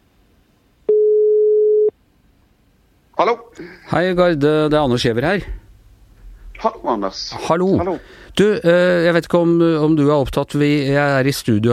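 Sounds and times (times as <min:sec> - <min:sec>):
outgoing phone call ringing tone on the line: 0:00.9 - 0:01.9
speech: 0:03.2 - 0:05.6, 0:06.6 - 0:11.7.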